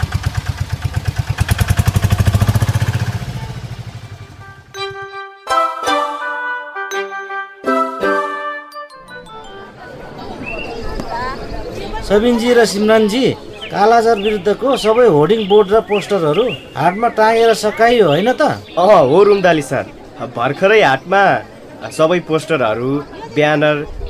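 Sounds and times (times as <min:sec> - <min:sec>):
three-wheeler tempo engine starting and running: 0:00.0 - 0:04.7
bright chiming tones playing a melody: 0:04.5 - 0:10.4
speech: 0:12.1 - 0:24.0.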